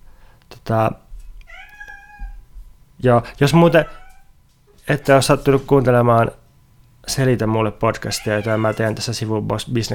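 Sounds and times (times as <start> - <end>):
speech: 0.5 - 1.0, 3.0 - 4.0, 4.9 - 6.4, 7.0 - 9.9
cat meowing: 1.5 - 2.4, 3.7 - 4.3, 8.0 - 9.1.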